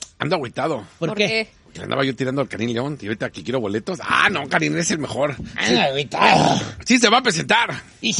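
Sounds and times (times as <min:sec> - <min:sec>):
speech: 0:00.2 - 0:08.1
man imitating a growling dog snarl: 0:06.2 - 0:06.8.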